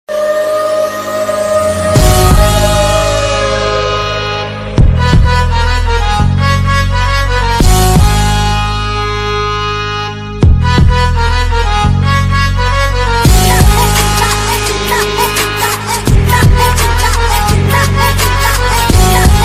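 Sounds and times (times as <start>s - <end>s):
ringtone music: 0.1s - 19.4s.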